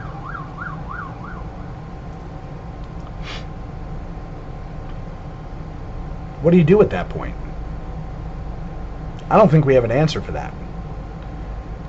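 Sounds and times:
emergency vehicle siren rising-and-falling yelps: 0.0s - 1.9s
steady rumble of road traffic: 0.0s - 11.8s
speech: 6.4s - 7.5s, 9.3s - 10.6s.

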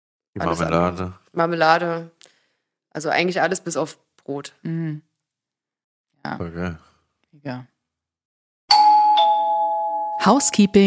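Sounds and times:
speech: 0.4s - 2.2s, 2.9s - 5.1s, 6.2s - 7.7s, 10.2s - 10.8s
two-tone doorbell chime: 8.7s - 10.8s.

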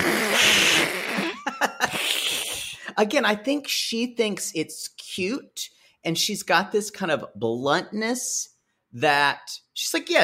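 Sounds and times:
person imitating an angry cat hissing and spitting: 0.0s - 3.0s
speech: 3.0s - 10.2s.

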